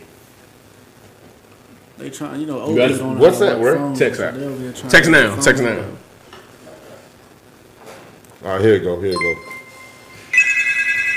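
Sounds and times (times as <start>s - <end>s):
speech: 2.0s - 6.0s, 8.5s - 9.5s
phone ringtone ringing for incoming call: 9.1s - 11.1s.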